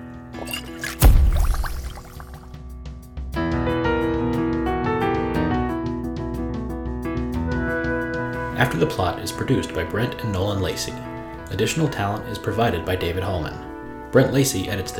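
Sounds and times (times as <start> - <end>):
steady musical passage: 0.0 - 14.9
liquid slosh and gulp of someone drinking a potion: 0.4 - 2.5
sharp splash: 0.4 - 2.5
speech: 8.6 - 14.9.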